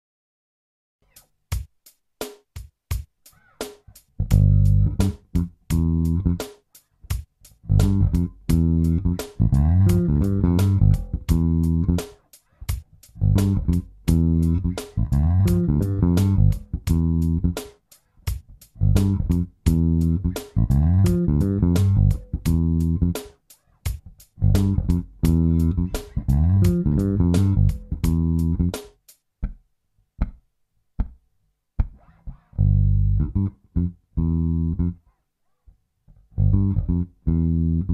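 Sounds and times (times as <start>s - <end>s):
slow bass groove in G: 3.0s - 29.1s, 31.8s - 35.1s, 36.2s - 37.9s.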